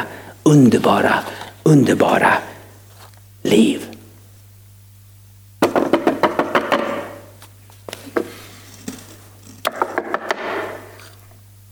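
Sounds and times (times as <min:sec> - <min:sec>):
speech: 0:00.0 - 0:02.5, 0:03.4 - 0:03.9
low steady hum: 0:00.0 - 0:10.0, 0:10.6 - 0:11.6
knocking on a wooden door: 0:05.6 - 0:07.1.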